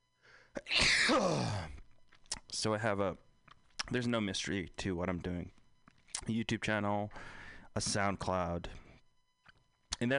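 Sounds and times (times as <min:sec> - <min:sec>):
person sneezing: 0:00.6 - 0:01.8
speech: 0:01.1 - 0:01.6, 0:02.6 - 0:03.3, 0:03.9 - 0:05.6, 0:06.2 - 0:08.8, 0:10.0 - 0:10.1.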